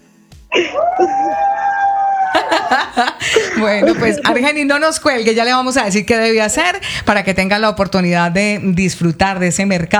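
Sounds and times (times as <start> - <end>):
group of people shouting in celebration: 0.7 - 2.8
laughter: 2.2 - 4.6
speech: 3.0 - 9.9.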